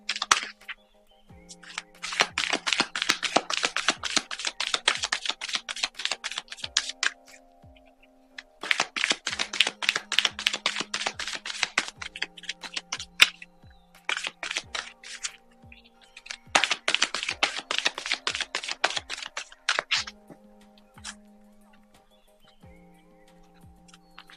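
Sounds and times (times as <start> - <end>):
deck of tarot cards shuffling: 0.0 - 0.6, 1.6 - 7.4, 8.6 - 15.4, 16.3 - 20.1.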